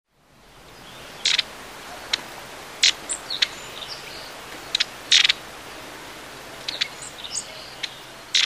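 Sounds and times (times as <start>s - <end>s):
soft steady hiss: 0.1s - 8.4s
long-tailed tit rattling calls and high tsee notes: 0.8s - 5.5s, 6.6s - 8.4s.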